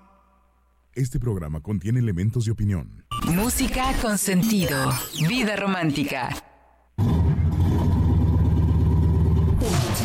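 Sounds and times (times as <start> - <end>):
speech: 1.0 - 6.5
car engine starting after the key is turned: 7.0 - 10.0.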